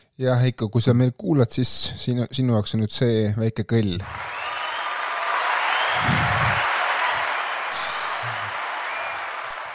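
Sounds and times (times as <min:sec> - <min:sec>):
speech: 0:00.2 - 0:04.4
applause: 0:04.0 - 0:09.7.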